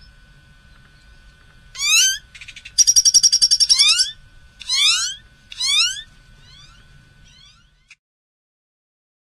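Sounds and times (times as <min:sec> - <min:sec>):
buzzy rattling bird trill: 0:01.7 - 0:07.9
bright upward-sweeping bird calls: 0:01.8 - 0:08.0.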